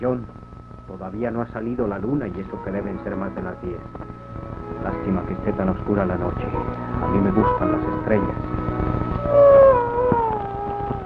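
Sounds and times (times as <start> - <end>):
speech: 0.0 - 4.2, 4.8 - 9.5
steady low droning background: 0.0 - 11.0
coyotes howling: 9.1 - 11.0.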